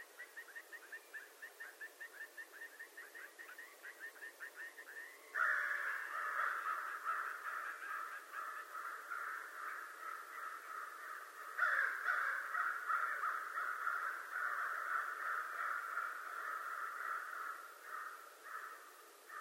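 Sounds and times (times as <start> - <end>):
American crow cawing: 5.3 - 19.3.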